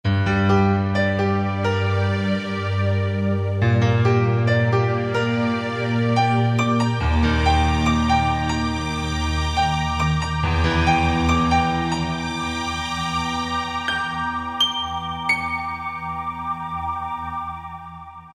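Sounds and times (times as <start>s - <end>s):
morphing piano synth preset: 0.1s - 18.3s.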